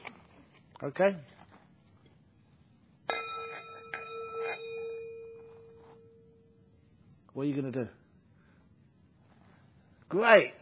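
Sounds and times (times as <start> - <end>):
speech: 0.8 - 1.3, 7.4 - 8.0, 10.1 - 10.5
bell struck and ringing with a clear tone: 3.1 - 6.7.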